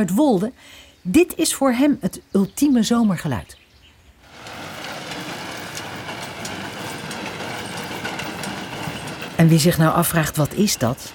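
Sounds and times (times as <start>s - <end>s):
speech: 0.0s - 3.6s, 9.4s - 11.1s
old-fashioned tractor threshing grain in a meadow in Zuidwolde: 4.2s - 11.1s.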